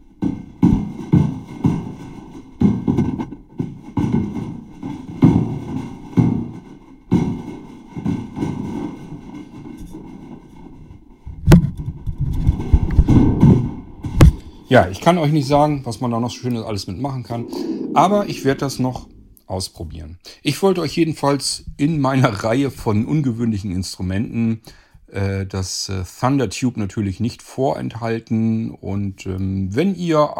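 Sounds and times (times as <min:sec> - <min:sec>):
footsteps climbing a metal ladder: 0:00.1 - 0:14.4
speech: 0:14.7 - 0:30.3.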